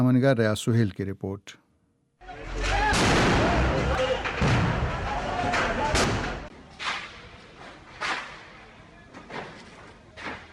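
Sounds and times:
speech: 0:00.0 - 0:01.6
sharp bangs of exploding stored ammunition: 0:02.6 - 0:07.4
stored ammunition exploding in a fire at night in an evidence storeroom: 0:02.9 - 0:06.5.

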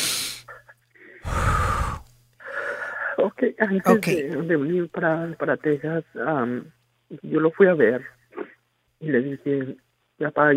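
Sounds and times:
person breathing deeply: 0:00.0 - 0:03.2
low steady hum: 0:00.5 - 0:10.5
speech: 0:03.4 - 0:08.2, 0:09.0 - 0:10.5.

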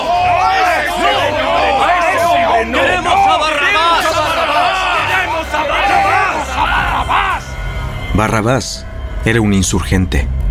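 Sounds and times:
large angry crowd shouting: 0:00.0 - 0:07.6
speech: 0:08.2 - 0:10.4.

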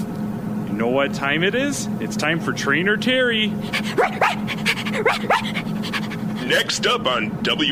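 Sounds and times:
speech: 0:00.8 - 0:07.7
dog panting: 0:03.6 - 0:06.7
dog yipping barks: 0:03.7 - 0:06.2.

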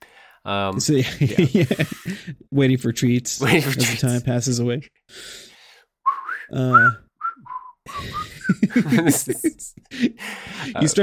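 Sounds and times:
speech: 0:00.4 - 0:05.5, 0:06.4 - 0:07.0, 0:07.9 - 0:11.0
person whistling a short bouncy tune: 0:06.1 - 0:08.6
breathy laughter and snickering: 0:07.9 - 0:10.8.

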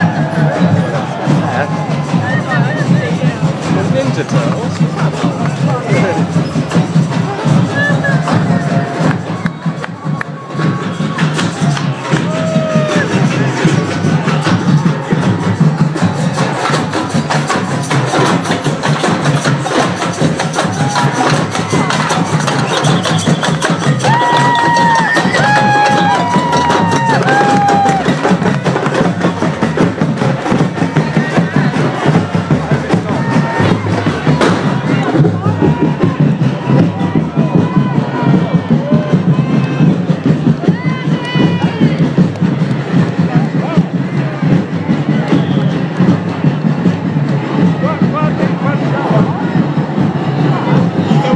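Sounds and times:
bonfire drums: 0:00.0 - 0:51.3.

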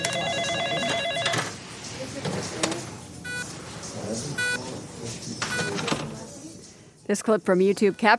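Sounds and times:
phone ringing: 0:00.0 - 0:01.6
electronic hospital monitors beeping in short stacked tones: 0:00.0 - 0:08.1
speech: 0:07.1 - 0:08.1.

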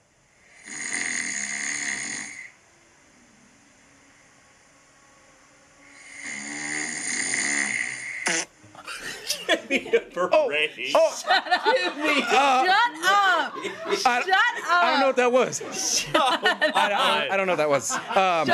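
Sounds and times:
sleeping person snoring: 0:00.4 - 0:02.6, 0:05.9 - 0:08.5
people chattering: 0:08.8 - 0:18.5
people laughing: 0:08.8 - 0:18.5
speech: 0:10.2 - 0:18.5.

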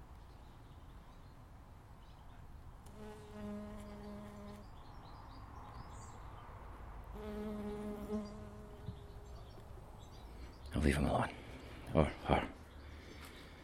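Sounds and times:
faint birdsong: 0:00.0 - 0:13.6
honey bee buzzing on marjoram: 0:02.9 - 0:04.7, 0:07.1 - 0:10.0
speech: 0:10.8 - 0:11.4, 0:12.0 - 0:12.4.

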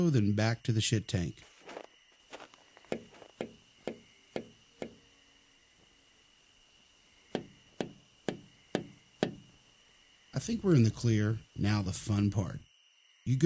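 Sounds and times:
speech: 0:00.0 - 0:01.5, 0:10.4 - 0:12.7, 0:13.3 - 0:13.4
tapping on window glass of a locked building: 0:02.9 - 0:05.0, 0:07.3 - 0:09.5.

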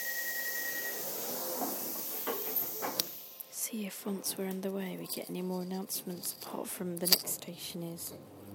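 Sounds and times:
thin whistle-like tone: 0:00.0 - 0:03.0
train at a station hissing and rumbling: 0:00.0 - 0:08.2
speech: 0:03.7 - 0:08.4.

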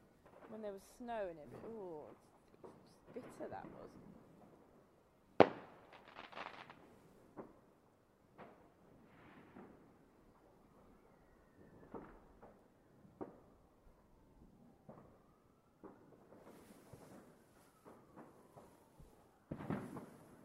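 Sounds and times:
distant fireworks popping and crackling on a cold night: 0:00.0 - 0:04.8, 0:05.4 - 0:13.6, 0:14.8 - 0:20.4
speech: 0:00.5 - 0:04.2.

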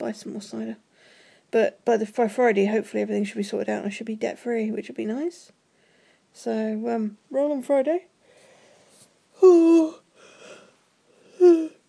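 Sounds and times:
speech: 0:00.0 - 0:05.6, 0:06.3 - 0:08.1, 0:09.4 - 0:10.0, 0:11.4 - 0:11.7
person yawning aloud: 0:09.4 - 0:11.8.

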